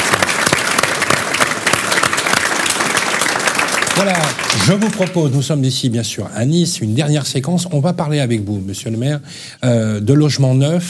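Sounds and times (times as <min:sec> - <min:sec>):
room full of people clapping for a speaker at an event in Nice France: 0:00.0 - 0:05.5
speech: 0:04.0 - 0:10.8.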